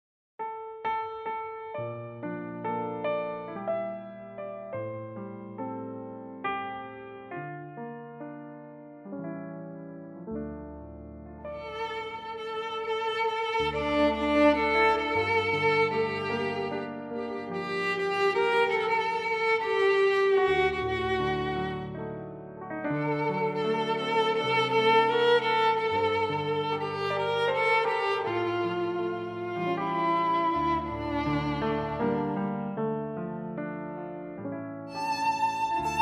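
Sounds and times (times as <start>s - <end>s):
piano in D minor: 0.4s - 36.0s
violin in D minor: 11.4s - 33.5s, 34.9s - 36.0s.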